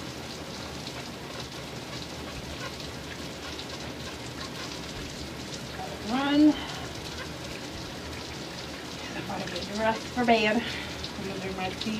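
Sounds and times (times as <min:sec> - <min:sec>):
hot water pouring into a bathtub: 0:02.8 - 0:11.9
speech: 0:09.8 - 0:10.8, 0:11.6 - 0:11.9.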